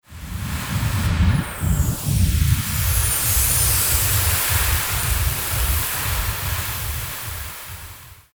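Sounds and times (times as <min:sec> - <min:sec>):
waterfall: 0:00.2 - 0:08.3.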